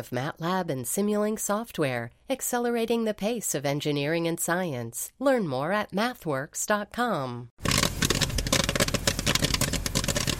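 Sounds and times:
speech: 0.0s - 7.7s
corn popping in a jury-rigged popcorn machine at a traveling youth circus: 7.6s - 10.3s.

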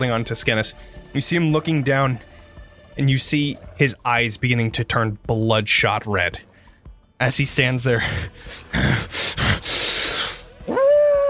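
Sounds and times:
speech: 0.0s - 2.4s, 3.0s - 6.5s, 7.2s - 9.2s
harsh breathy snarls and hisses: 8.5s - 10.5s
wolf howl: 10.6s - 11.2s.

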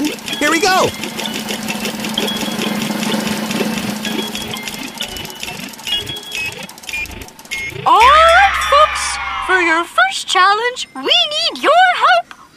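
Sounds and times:
prize wheel spinning with rapid mechanical clicks: 0.0s - 9.2s
speech: 0.5s - 1.2s, 9.8s - 12.5s.

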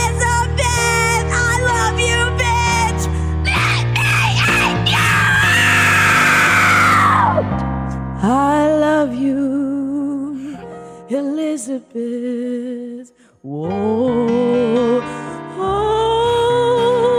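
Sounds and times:
steady musical backing: 0.0s - 17.1s
person screaming in strained wavering bursts: 3.4s - 7.4s
speech: 11.8s - 12.4s, 13.4s - 14.1s.

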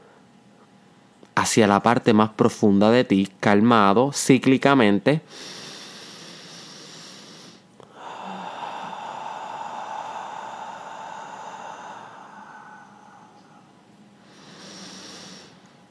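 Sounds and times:
speech: 1.4s - 5.6s
slow deep calm breath drawn in to center oneself: 5.3s - 15.8s.

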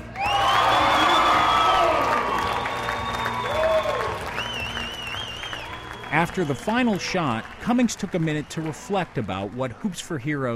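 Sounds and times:
whoops and shouts from the crowd: 0.0s - 4.6s
crowd of about 150 people cheering and applauding: 0.0s - 10.3s
speech: 6.2s - 10.5s.

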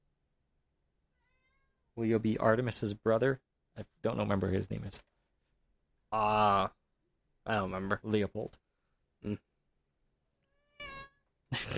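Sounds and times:
female cat meowing while being petted: 1.1s - 1.9s, 10.4s - 11.3s
speech: 2.0s - 5.1s, 6.1s - 6.8s, 7.4s - 8.6s, 9.2s - 9.5s, 11.5s - 11.7s.

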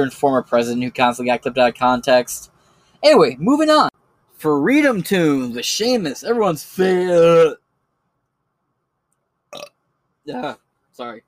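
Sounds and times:
speech: 0.0s - 7.6s, 10.3s - 11.2s
loud burp: 9.5s - 9.8s.

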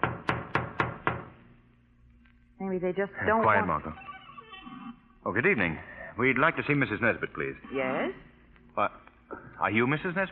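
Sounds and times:
firm knocks on a door: 0.0s - 1.4s
speech: 2.7s - 4.1s, 5.2s - 9.0s, 9.6s - 10.3s.

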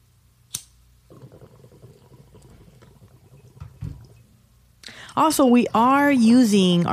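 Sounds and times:
sharp click: 0.5s - 0.8s
water gurgling in a small green glass bubbler pipe: 1.1s - 6.3s
speech: 5.2s - 6.9s.

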